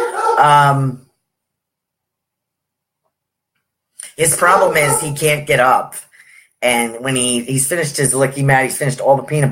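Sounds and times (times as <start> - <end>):
dog barking: 0.0 - 0.5, 4.3 - 5.2
speech: 0.4 - 1.0, 4.2 - 9.5.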